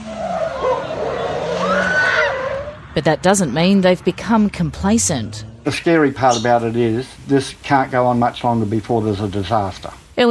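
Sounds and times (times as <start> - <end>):
speeding car tires skidding and squealing: 0.0 - 2.9
speeding car engine roaring: 0.0 - 7.2
speech: 3.0 - 10.2.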